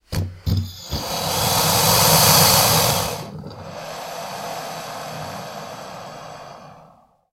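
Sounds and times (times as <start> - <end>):
alligator snorting: 0.6 - 7.0.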